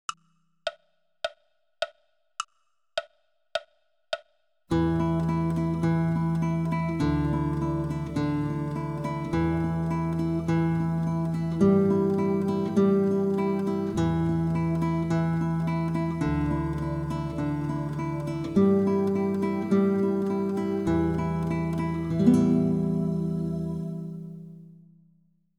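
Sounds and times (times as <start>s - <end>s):
mini tremolo: 4.7s - 24.4s.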